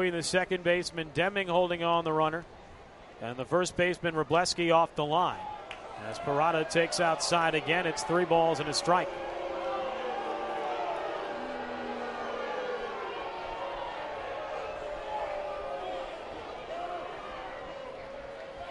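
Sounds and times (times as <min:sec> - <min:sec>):
speech: 0:00.0 - 0:02.6, 0:03.2 - 0:09.3
large hometown crowd booing at a baseball game: 0:05.5 - 0:18.6.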